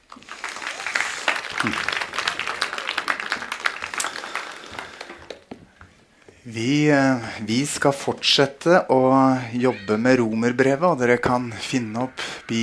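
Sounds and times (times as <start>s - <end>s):
congregation applauding: 0.0s - 5.6s
speech: 1.6s - 2.0s, 6.5s - 12.6s.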